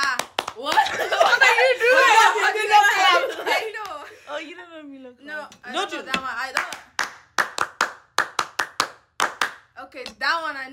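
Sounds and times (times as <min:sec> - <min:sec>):
hands clapping in a rhythmic pattern: 0:00.0 - 0:01.6, 0:03.7 - 0:04.1, 0:06.1 - 0:09.8
laughter: 0:00.7 - 0:04.2.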